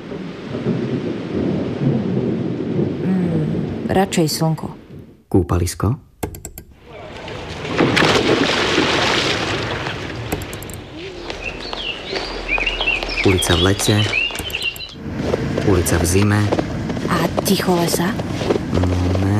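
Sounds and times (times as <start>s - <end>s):
thunder rumbling: 0.0s - 5.6s, 6.7s - 19.3s
rain pouring: 0.0s - 5.7s, 6.7s - 19.3s
speech: 3.9s - 6.1s, 13.3s - 14.2s, 15.7s - 16.6s, 17.5s - 18.2s, 18.8s - 19.3s
sea waves: 6.7s - 18.7s
faint bird chirps and whistles: 10.9s - 15.0s.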